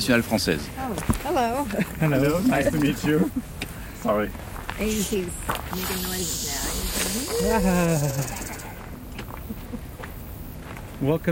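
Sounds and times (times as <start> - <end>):
speech: 0.0 - 8.5, 11.0 - 11.3
laughter: 1.6 - 3.5, 7.2 - 9.9
rattlesnake rattling and hissing: 4.8 - 9.0.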